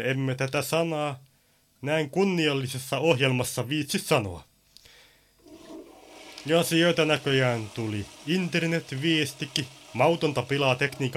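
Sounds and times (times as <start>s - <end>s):
speech: 0.0s - 4.5s, 6.4s - 11.1s
toilet flushing with a click and rushing gurgle: 5.4s - 11.1s.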